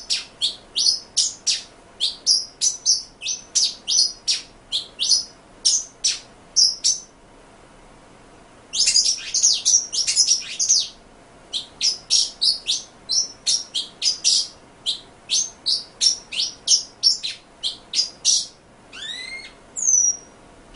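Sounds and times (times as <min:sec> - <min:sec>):
pin-tailed whydah song of sharp high chirps and squeaky notes: 0:00.0 - 0:07.2, 0:08.7 - 0:20.7.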